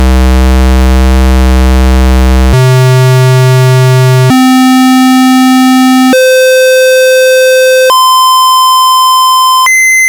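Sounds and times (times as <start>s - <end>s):
analog synth VCO square wave: 0.0s - 10.0s.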